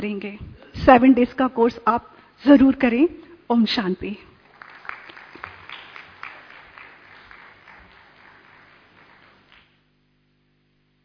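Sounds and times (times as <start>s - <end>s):
speech: 0.0s - 4.3s
audience applause: 4.4s - 9.8s.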